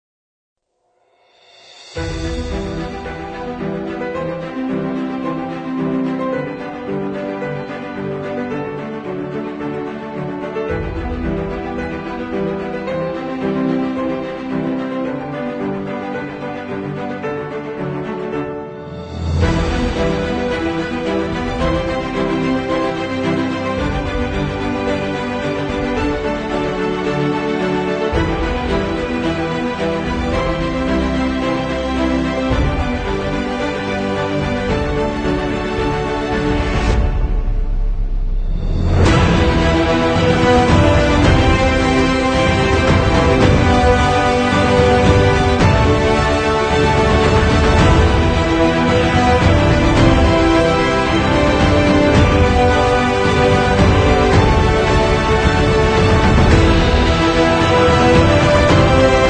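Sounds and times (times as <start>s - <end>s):
emotional inspiring epic cinematic trailer music: 1.0s - 59.2s.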